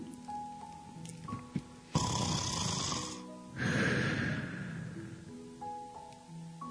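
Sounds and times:
person imitating heavy breathing: 1.9s - 5.3s
harsh and wheezy breathy rushes of air: 3.0s - 5.2s.

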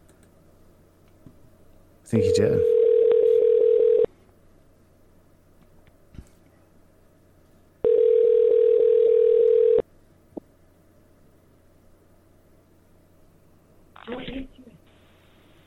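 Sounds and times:
speech: 2.1s - 2.8s
telephone line tone after a hang-up: 2.2s - 4.1s, 7.8s - 9.8s.

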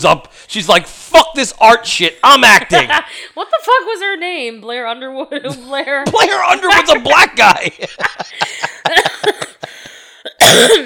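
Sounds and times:
speech: 0.0s - 9.5s, 10.4s - 10.8s
laughter: 6.1s - 10.2s
fit of short dry coughs and throat-clearing hacks: 8.4s - 10.8s.

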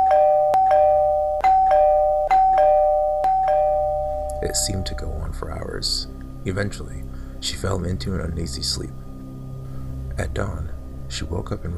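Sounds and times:
two-tone electronic doorbell ringing: 0.0s - 4.8s
speech: 4.4s - 9.0s, 10.2s - 11.7s.

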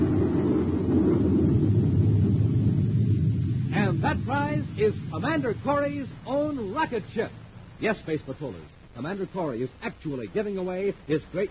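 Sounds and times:
thundering explosion sound effect: 0.0s - 8.4s
speech: 4.2s - 11.4s.

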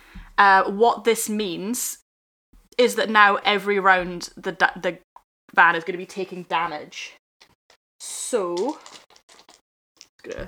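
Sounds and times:
speech: 0.4s - 2.0s, 2.8s - 7.2s, 8.0s - 9.0s, 10.2s - 10.4s
dice clattering onto a hard floor during a tabletop game roll: 8.6s - 9.6s.

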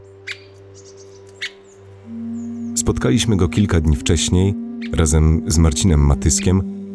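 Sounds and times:
steady low hum: 0.0s - 6.9s
three-toed woodpecker call notes: 0.0s - 6.9s
speech: 2.8s - 6.8s.

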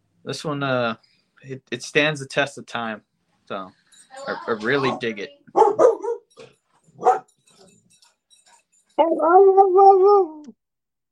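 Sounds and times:
speech: 0.2s - 7.2s, 9.0s - 10.6s
dog barking: 5.5s - 7.4s
dog drawn-out wavering cry: 9.0s - 10.5s.

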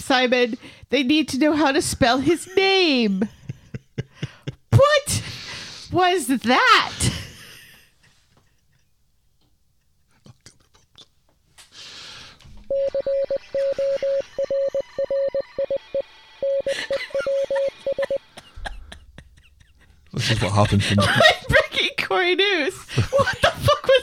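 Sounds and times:
speech: 0.0s - 3.4s, 5.9s - 7.2s, 12.7s - 18.3s, 20.2s - 24.0s
laughter: 2.3s - 4.6s, 13.0s - 22.0s, 22.7s - 24.0s
Morse code beeps: 12.7s - 18.2s.

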